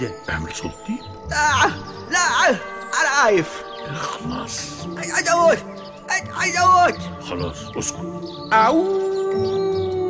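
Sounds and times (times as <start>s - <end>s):
speech: 0.0s - 9.6s
wolf howling: 8.5s - 10.0s.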